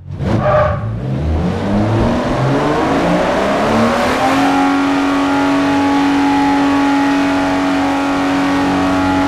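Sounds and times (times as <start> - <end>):
Reventon vehicle engine revving: 0.0 - 9.2.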